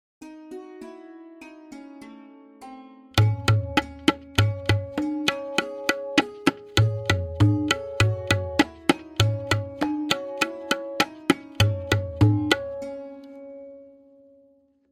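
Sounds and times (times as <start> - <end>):
lehra melody: 0.2 - 14.5
tabla playing Benares Kaida at double speed in Tintal: 3.2 - 13.3.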